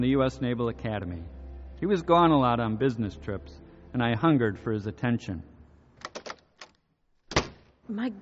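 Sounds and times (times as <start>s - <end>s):
speech: 0.0s - 5.5s, 7.9s - 8.2s
door slammed shut hard: 7.3s - 7.7s.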